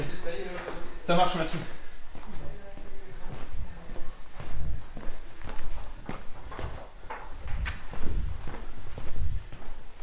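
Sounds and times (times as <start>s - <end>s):
footsteps climbing to the upper floor of a historic house museum: 0.0s - 10.0s
speech: 1.1s - 1.8s.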